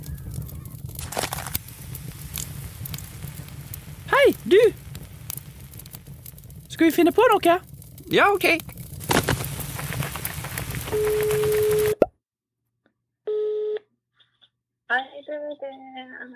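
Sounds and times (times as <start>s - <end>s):
speech: 4.5s - 4.8s, 6.8s - 8.7s
steady telephone tone: 10.9s - 12.0s, 13.3s - 13.8s.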